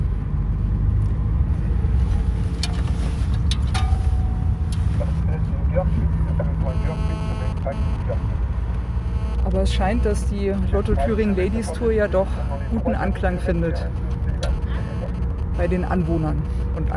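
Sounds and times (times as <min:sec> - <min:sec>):
cars at a women's cycling race driving past on a road in Görkwitz: 0:00.0 - 0:16.9
faint tones: 0:04.2 - 0:16.9
indistinct voices: 0:04.8 - 0:08.8, 0:09.4 - 0:16.9
speech: 0:09.6 - 0:14.0, 0:15.6 - 0:16.9.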